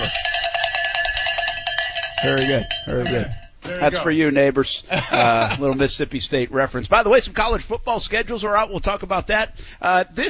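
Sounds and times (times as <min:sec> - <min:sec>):
metal bell being rung rapidly: 0:00.0 - 0:04.1
speech: 0:02.2 - 0:10.2
laughter: 0:04.9 - 0:06.0.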